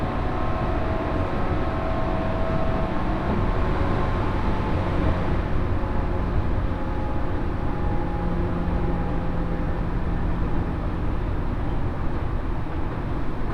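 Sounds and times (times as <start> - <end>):
local train rumbling between stations: 0.0 - 13.5.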